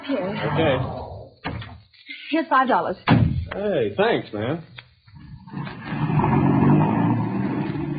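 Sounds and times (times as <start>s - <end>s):
speech: 0.1s - 1.6s, 2.3s - 4.7s
car engine starting and revving as the vehicle pulls off: 5.4s - 7.9s.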